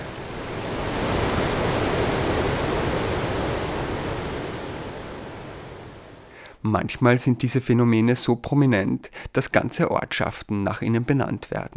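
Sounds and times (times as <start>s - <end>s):
rushing water of a stream or waterfall: 0.0s - 6.3s
speech: 6.6s - 11.7s.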